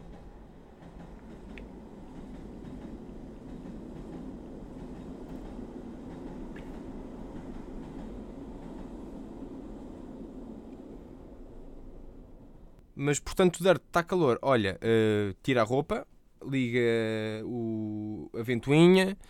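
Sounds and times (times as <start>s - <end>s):
rhythmic rattling of train wheels and cars: 0.0s - 11.0s
train rumbling past: 0.0s - 12.8s
speech: 13.0s - 19.2s.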